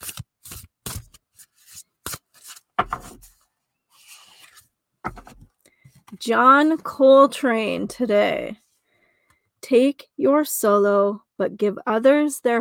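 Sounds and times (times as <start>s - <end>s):
deck of music oracle cards being shuffled: 0.0s - 5.4s
speech: 6.2s - 8.6s, 9.7s - 12.5s.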